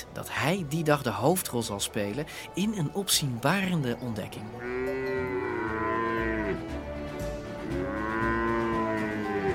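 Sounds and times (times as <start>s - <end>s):
speech: 0.2s - 4.9s
cattle herd mooing while driven through dry Wyoming wilderness: 4.6s - 6.8s, 7.6s - 9.5s.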